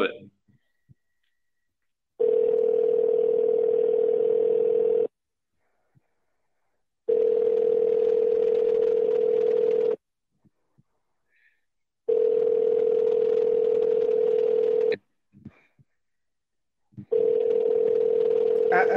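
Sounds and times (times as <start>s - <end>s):
telephone ringback tone over the line of a call to a business: 2.2s - 5.1s, 7.1s - 10.0s, 12.1s - 14.9s, 17.1s - 18.9s.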